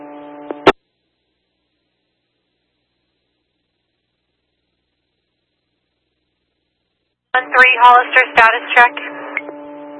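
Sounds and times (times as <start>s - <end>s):
speech: 7.4s - 9.2s
steady electronic radio buzz: 7.4s - 9.9s.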